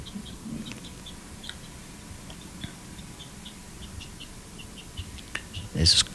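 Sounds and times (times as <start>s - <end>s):
faint high chirping calls at night: 0.0s - 6.1s
low steady rumble at night: 0.0s - 6.1s
speech: 5.8s - 6.1s.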